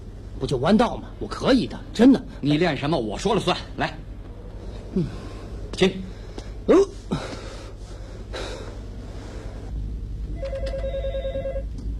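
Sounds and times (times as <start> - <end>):
low rumble: 0.0 - 11.9
speech: 0.4 - 4.1, 5.0 - 5.2, 5.8 - 6.1, 6.7 - 7.2
telephone ringing: 10.4 - 11.7.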